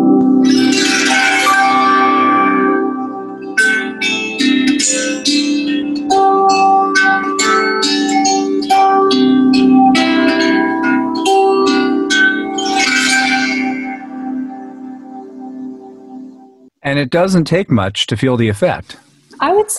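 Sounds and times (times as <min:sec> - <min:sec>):
reverie harp strummed in slow sweeping waves: 0:00.2 - 0:14.9
speech: 0:16.9 - 0:19.7.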